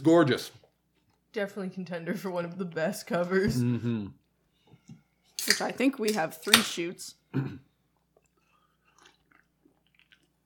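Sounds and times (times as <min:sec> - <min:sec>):
speech: 0:00.0 - 0:00.6, 0:01.3 - 0:04.2, 0:04.9 - 0:07.7
chewing Chinese food with soft crunches and wet mouth sounds: 0:08.0 - 0:10.4.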